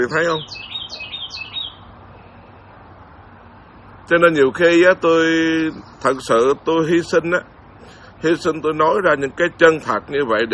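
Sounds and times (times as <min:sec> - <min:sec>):
speech: 0:00.0 - 0:01.0, 0:04.1 - 0:07.5, 0:08.2 - 0:10.5
bird singing loudly: 0:00.0 - 0:02.7, 0:05.2 - 0:07.1
hiss: 0:00.0 - 0:10.5.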